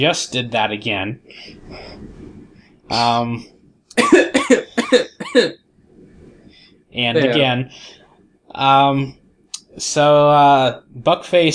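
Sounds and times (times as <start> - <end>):
speech: 0.0 - 2.1, 2.9 - 5.6, 6.9 - 9.2, 9.8 - 11.5
person coughing against the microphone: 4.0 - 5.6.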